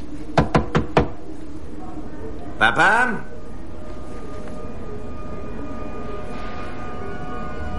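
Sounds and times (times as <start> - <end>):
knocking on an apartment door in a building hallway: 0.4 - 1.2
speech: 2.6 - 3.3.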